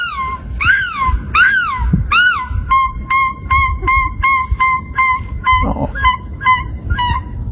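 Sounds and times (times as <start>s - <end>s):
faint noise: 0.0s - 7.5s
gulls calling: 0.0s - 7.5s
woman imitating gull cries: 5.0s - 6.2s.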